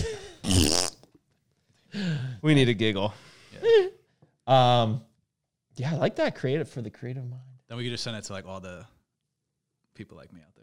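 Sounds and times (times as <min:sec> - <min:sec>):
fart sound effect from a button: 0:00.4 - 0:01.0
speech: 0:02.0 - 0:03.9, 0:04.5 - 0:05.1, 0:05.8 - 0:08.9, 0:10.0 - 0:10.6.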